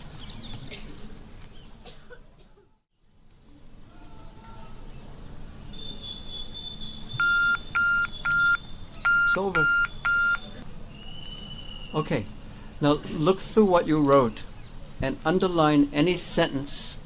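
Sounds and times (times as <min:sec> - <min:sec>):
timer beeping: 0:07.1 - 0:10.6
speech: 0:09.3 - 0:09.8, 0:12.0 - 0:17.0.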